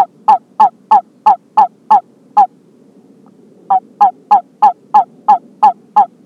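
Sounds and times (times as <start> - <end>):
California toad Anaxyrus boreas halophilus chirping calls: 0.0 - 2.5, 3.7 - 6.2
low background hum: 0.0 - 6.2.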